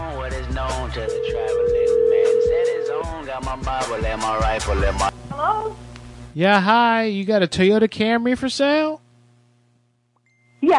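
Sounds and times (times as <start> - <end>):
speech: 0.9 - 2.0, 3.1 - 9.0
voices: 0.9 - 4.5
telephone dial tone during a redial: 1.0 - 3.2.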